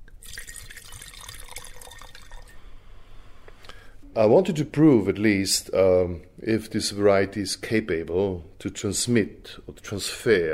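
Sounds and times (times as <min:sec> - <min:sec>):
wine pouring into a glass: 0:00.1 - 0:02.7
speech: 0:04.2 - 0:10.5.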